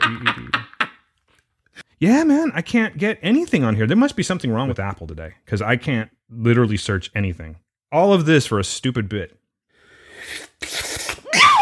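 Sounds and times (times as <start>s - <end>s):
speech: 2.0s - 9.4s
drawn-out wailing sneeze: 10.5s - 11.6s.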